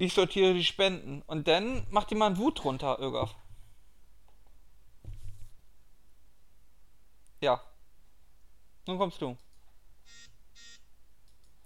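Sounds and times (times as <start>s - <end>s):
speech: 0.0s - 3.4s, 7.4s - 7.7s, 8.8s - 9.4s
mobile phone alert beeps: 10.1s - 10.8s.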